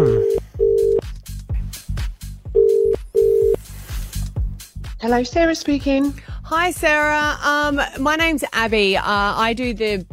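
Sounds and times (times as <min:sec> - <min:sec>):
telephone line tone buzzes in pairs as a phone call is dialed: 0:00.0 - 0:01.0, 0:02.6 - 0:03.6
rhythmic backing beat: 0:00.0 - 0:10.1
speech: 0:05.0 - 0:10.1.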